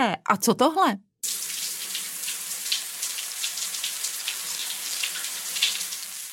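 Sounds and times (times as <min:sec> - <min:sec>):
speech: 0:00.0 - 0:01.1
shower water spraying: 0:01.2 - 0:06.3.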